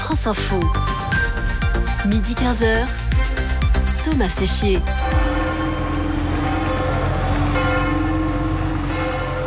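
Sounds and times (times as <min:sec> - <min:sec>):
speech: 0:00.1 - 0:00.9, 0:02.0 - 0:03.1, 0:04.1 - 0:05.3
steady hum of city noise in Paris: 0:03.5 - 0:09.4
church bells of Saint-Pierre de Montrouge in Paris ringing: 0:04.5 - 0:09.4.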